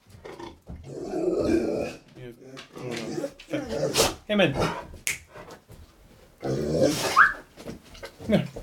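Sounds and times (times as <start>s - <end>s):
dog growling low in short bursts: 0.2s - 5.0s, 6.4s - 7.4s
speech: 4.3s - 4.9s.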